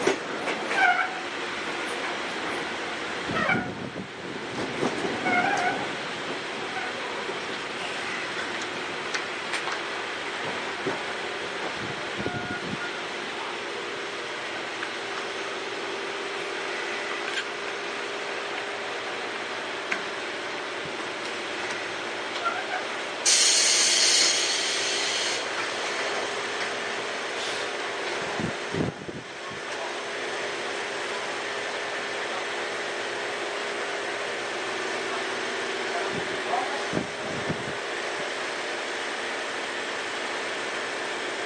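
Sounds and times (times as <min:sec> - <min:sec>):
rolling rumble inside a moving commuter train with aluminium 20 m cars: 0:00.0 - 0:41.4.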